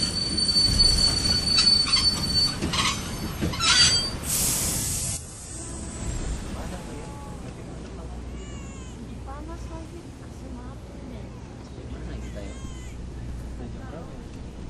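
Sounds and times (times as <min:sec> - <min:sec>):
high-pitched wheel squeals of an express train braking hard: 0:00.0 - 0:04.3
rumbling rail noise of a braking train: 0:00.0 - 0:14.6
hissing air of train brakes: 0:04.2 - 0:07.1.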